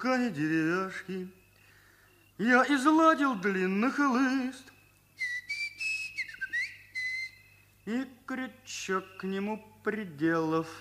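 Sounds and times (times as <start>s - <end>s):
speech: 0.0s - 1.4s, 2.4s - 5.3s, 7.9s - 10.7s
long drawn-out human whistle: 4.6s - 8.0s.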